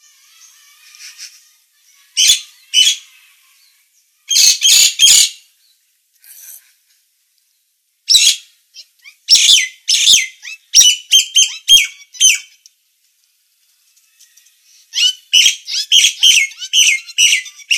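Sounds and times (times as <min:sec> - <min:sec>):
Nias hill myna in full active song: 0:00.2 - 0:03.2, 0:04.2 - 0:05.4, 0:08.1 - 0:12.6, 0:14.9 - 0:17.7.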